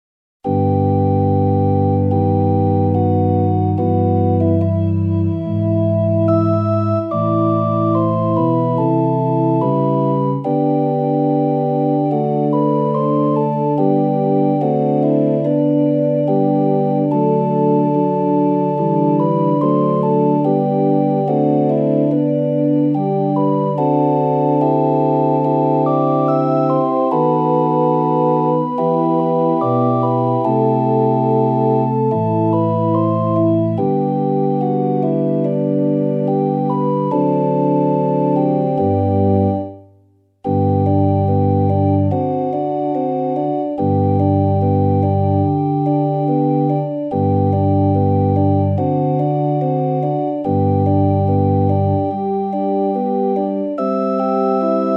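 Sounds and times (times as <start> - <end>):
organ piece: 0.4 - 54.9.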